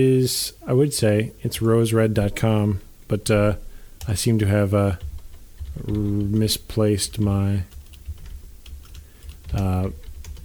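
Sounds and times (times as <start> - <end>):
speech: 0.0 - 5.1, 5.8 - 7.8, 9.5 - 10.0
typing on a computer keyboard: 4.0 - 10.4.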